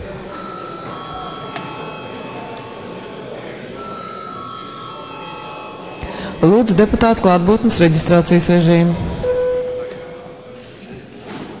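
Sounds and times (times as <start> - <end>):
parliament session electric bell ringing: 0.3 - 2.6, 3.8 - 6.8
speech: 6.4 - 9.1.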